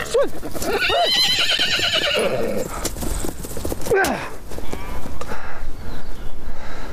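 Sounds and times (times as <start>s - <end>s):
horse whinnying: 0.0s - 2.7s
horse hoof clops: 0.0s - 5.4s
speech: 0.2s - 3.1s, 3.9s - 4.4s
rustling noise: 2.6s - 5.2s.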